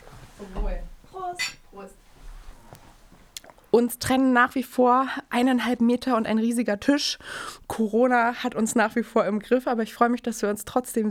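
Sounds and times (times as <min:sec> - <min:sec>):
light tableware clatter: 0:00.0 - 0:01.9
speech: 0:00.4 - 0:00.6, 0:03.8 - 0:11.1
glasses clinking in a toast: 0:00.5 - 0:01.9.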